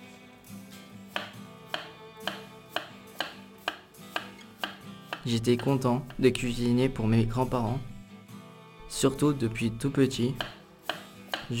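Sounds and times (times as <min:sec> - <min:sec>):
knife slicing peeled potatoes into thin rounds: 0:01.1 - 0:06.2, 0:10.4 - 0:11.5
speech: 0:05.2 - 0:07.9, 0:09.0 - 0:10.6.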